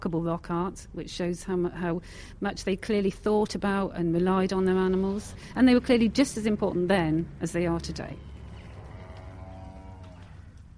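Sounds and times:
speech: 0:00.0 - 0:08.3
steady rumbling farmyard background: 0:03.7 - 0:10.7
cow lowing in a long drawn-out moo: 0:08.2 - 0:10.7.

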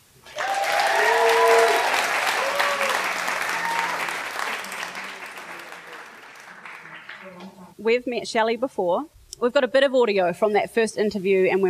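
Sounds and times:
faint audience cheers: 0:00.2 - 0:07.2
live audience applause welcoming a guest: 0:00.2 - 0:07.7
speech: 0:07.8 - 0:11.6.

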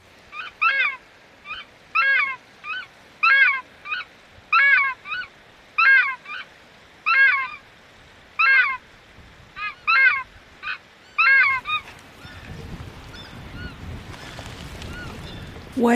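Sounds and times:
recorded takahē calls played from a small loudspeaker: 0:00.3 - 0:07.6, 0:08.4 - 0:08.8, 0:09.6 - 0:13.9
speech: 0:15.8 - 0:15.9.

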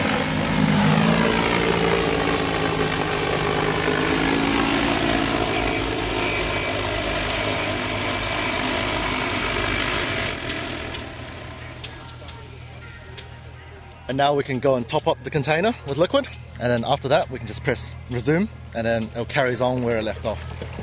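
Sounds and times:
agricultural spray drone propellers whirring while landing: 0:00.0 - 0:13.2
speech: 0:14.1 - 0:20.8.

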